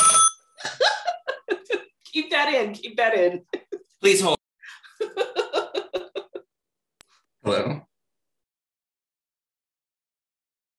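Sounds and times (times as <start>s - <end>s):
landline telephone electronic trill: 0.0s - 0.5s
voiced bursts of talk or laughter: 0.6s - 2.0s, 3.2s - 4.0s, 4.7s - 6.4s
speech: 2.4s - 4.4s.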